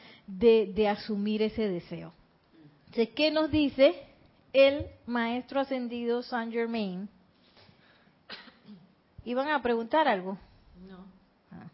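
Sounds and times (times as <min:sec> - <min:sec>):
speech: 0:00.3 - 0:02.2, 0:02.9 - 0:07.2, 0:09.2 - 0:11.7
small soft cough: 0:08.2 - 0:09.0.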